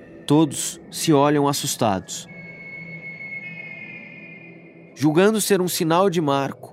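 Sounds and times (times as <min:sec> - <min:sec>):
speech: 0:00.3 - 0:02.3, 0:05.0 - 0:06.7
whistle blown from the woods: 0:02.0 - 0:05.8.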